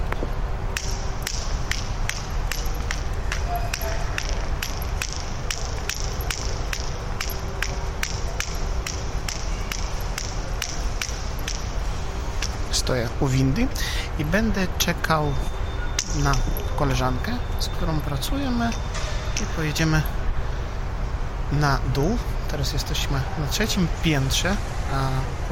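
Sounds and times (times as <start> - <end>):
hard-soled footsteps echoing through an empty closed shopping mall: 0.0 - 13.3
constant low ventilation hum in an empty shopping mall: 0.0 - 25.5
speech: 12.8 - 15.6, 16.2 - 20.2, 21.5 - 25.5.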